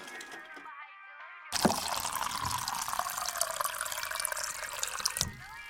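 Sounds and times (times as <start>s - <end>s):
soda pouring from a gas station soda fountain into a cup: 1.6s - 5.6s.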